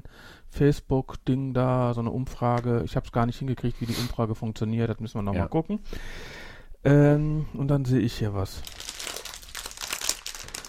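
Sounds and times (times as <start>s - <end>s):
speech: 0.5s - 8.8s
plastic snack bag crinkling as it is handled: 8.6s - 10.6s.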